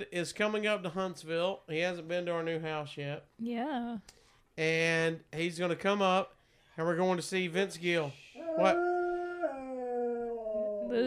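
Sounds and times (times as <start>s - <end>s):
speech: 0.0s - 8.9s
dog howling: 8.4s - 11.0s.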